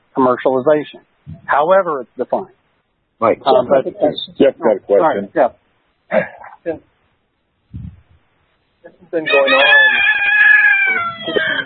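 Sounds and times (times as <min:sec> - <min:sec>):
speech: 0:00.2 - 0:02.6, 0:03.2 - 0:06.9, 0:08.8 - 0:11.6
rooster crowing: 0:09.2 - 0:11.6.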